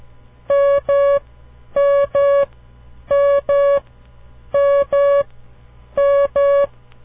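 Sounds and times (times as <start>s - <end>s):
Morse code beeping tones for the letter M: 1.8s - 2.5s, 3.1s - 3.8s, 4.6s - 5.3s, 6.0s - 6.7s.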